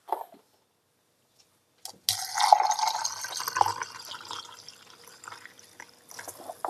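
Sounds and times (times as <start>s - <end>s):
spring water poured from a glass into a jar of oats: 2.0s - 6.6s.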